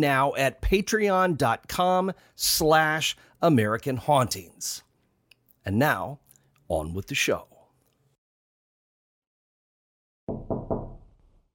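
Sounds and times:
speech: 0.0s - 4.9s, 5.6s - 7.5s
heavy knocks with a dull low thud: 10.3s - 11.1s.

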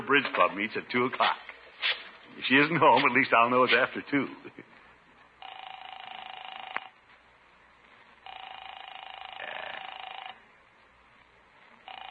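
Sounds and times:
speech: 0.1s - 4.7s
telephone ringing in long buzzing bursts: 5.4s - 7.0s, 8.2s - 10.5s, 11.8s - 12.1s.

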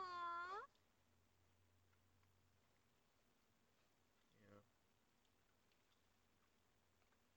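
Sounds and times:
white cat meowing: 0.0s - 0.7s.

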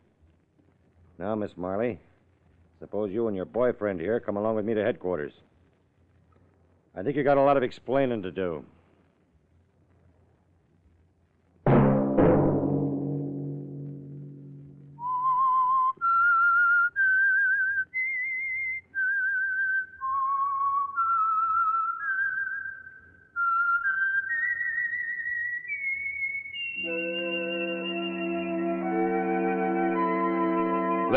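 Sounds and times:
speech: 1.2s - 2.1s, 2.8s - 5.5s, 7.0s - 8.8s
swelling orchestral chord: 11.7s - 15.0s, 26.8s - 31.1s
brief low musical sting: 11.7s - 15.1s
solo whistled melody: 14.7s - 31.1s.

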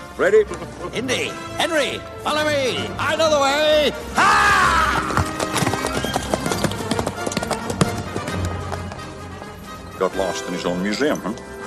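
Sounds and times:
speech: 0.2s - 4.8s, 10.0s - 11.5s
horses galloping off: 4.3s - 11.6s
hooves pounding out a fast steady clip-clop: 4.4s - 11.6s.

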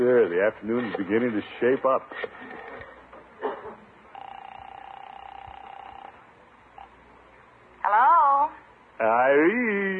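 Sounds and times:
speech: 0.0s - 2.6s, 9.0s - 9.9s
faintly pulsing telephone tone: 4.1s - 6.2s.

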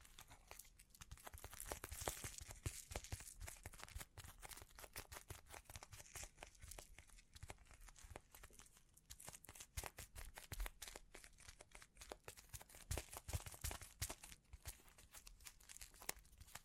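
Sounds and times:
tiny clicks taps and crinkles from sparkly objects: 0.0s - 16.6s.

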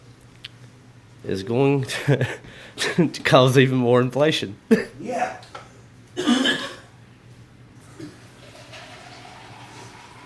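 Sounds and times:
speech: 1.2s - 5.6s
tap water pouring into a glass: 8.0s - 10.2s.

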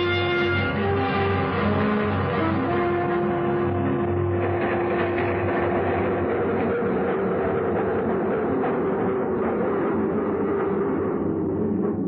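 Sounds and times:
subway train rumbling on rails heard from inside the car: 0.2s - 12.0s.

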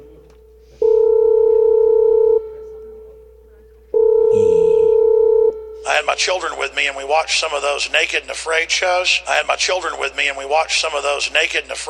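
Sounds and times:
loud steady telephone tone while placing a call: 0.8s - 2.5s, 4.0s - 5.6s
speech: 6.2s - 11.8s.

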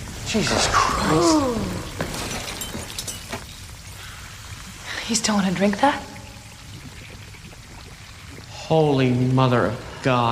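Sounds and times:
speech: 0.3s - 2.0s, 5.1s - 6.1s, 8.7s - 10.2s
glass fragments tinkling: 1.8s - 3.8s
glass canister full of green goo shattering: 1.9s - 3.7s.

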